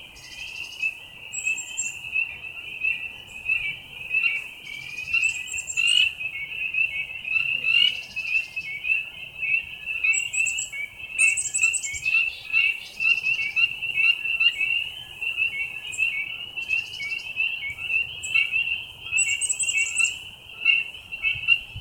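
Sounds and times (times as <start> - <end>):
frogs calling in a dense chorus: 0.2 - 21.7.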